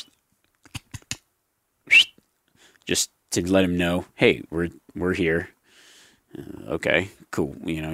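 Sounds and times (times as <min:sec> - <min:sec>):
person whistling in a timber pocket on a cold ridge: 0:01.9 - 0:02.2
speech: 0:02.9 - 0:05.6, 0:06.3 - 0:07.9.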